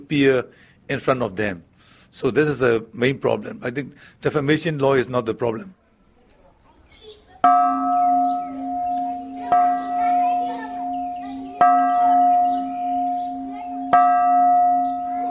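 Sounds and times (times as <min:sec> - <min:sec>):
speech: 0:00.0 - 0:05.8
children's voices: 0:05.8 - 0:15.2
pagoda temple bells struck by tourists as a purification ritual: 0:07.4 - 0:15.2
chirping: 0:08.0 - 0:15.2.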